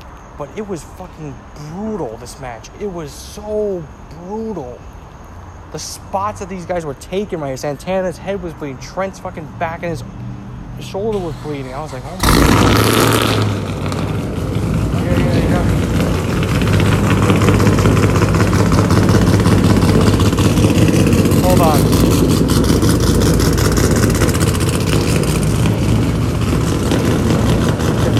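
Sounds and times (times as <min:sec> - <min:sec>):
speech: 0:00.4 - 0:04.9, 0:05.7 - 0:10.2, 0:10.8 - 0:13.7
car engine revving with rough throaty drone: 0:07.9 - 0:28.1.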